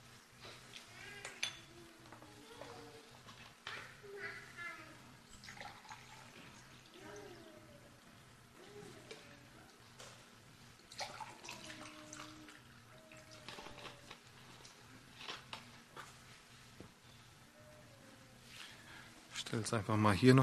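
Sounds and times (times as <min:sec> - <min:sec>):
low hum: 0:00.0 - 0:20.4
water splashing and gurgling as poured into a glass: 0:05.3 - 0:06.9, 0:10.8 - 0:13.2
speech: 0:19.5 - 0:20.4.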